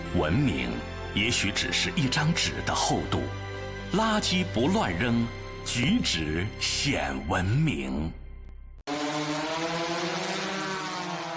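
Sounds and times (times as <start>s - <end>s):
speech: 0.2s - 8.2s
drone propeller buzz overhead: 8.9s - 11.3s.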